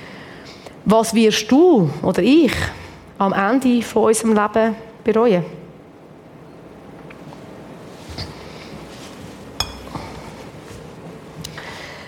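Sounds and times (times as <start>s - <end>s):
speech: 0.9s - 5.6s
glass jar filled with paper slips clinking: 9.6s - 10.0s.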